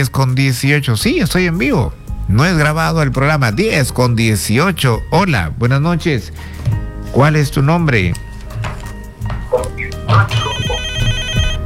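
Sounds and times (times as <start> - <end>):
speech: 0.0 - 8.2, 10.2 - 10.6
telephone ringing with electronic tone: 9.6 - 11.6.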